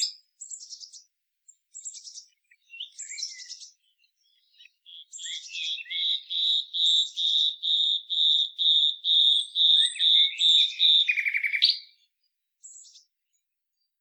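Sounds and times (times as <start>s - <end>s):
common nightingale Luscinia megarhynchos song: 0.0s - 13.4s.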